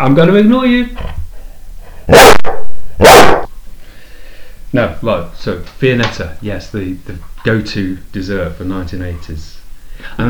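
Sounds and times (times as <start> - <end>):
speech: 0.0 - 1.2, 4.7 - 10.2
dog barking: 2.1 - 3.5.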